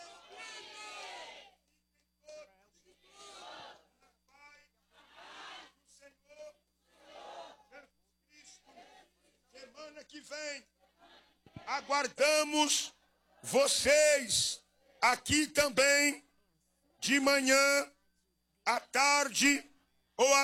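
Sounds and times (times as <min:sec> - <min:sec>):
congregation shouting, many voices crying out together: 0:00.0 - 0:01.6, 0:02.9 - 0:04.0, 0:04.9 - 0:05.9, 0:06.9 - 0:07.8, 0:08.4 - 0:09.7, 0:10.8 - 0:15.0
speech: 0:11.7 - 0:16.2, 0:17.0 - 0:17.9, 0:18.7 - 0:20.4.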